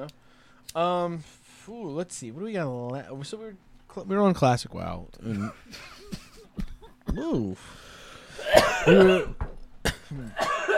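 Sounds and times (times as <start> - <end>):
speech: 0.0 - 6.0, 6.6 - 9.5, 10.1 - 10.5
person coughing: 8.3 - 10.7
throat clearing: 8.4 - 10.7.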